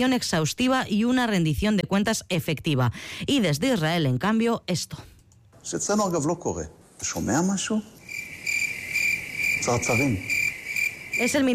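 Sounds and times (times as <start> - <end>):
speech: 0.0 - 8.0, 9.6 - 10.4, 11.2 - 11.5
steady high-pitched cricket chirping: 7.4 - 11.5.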